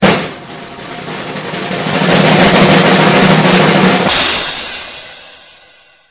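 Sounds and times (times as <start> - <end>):
drumroll: 0.0 - 6.0.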